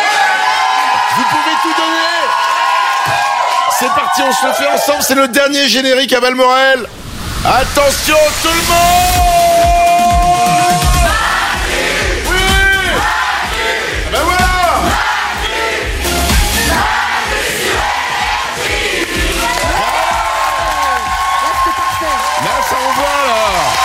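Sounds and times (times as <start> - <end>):
live audience clapping at a show recording: 0.0 - 5.0, 9.5 - 23.8
large live audience cheering and whooping at a show recording: 0.0 - 5.3, 8.8 - 13.6, 16.7 - 23.8
speech: 3.8 - 9.4.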